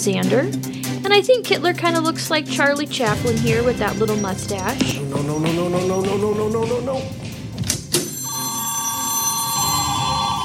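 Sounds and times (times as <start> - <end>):
speech: 0.0 - 7.3
telephone ringing with an electronic trill: 8.0 - 10.4.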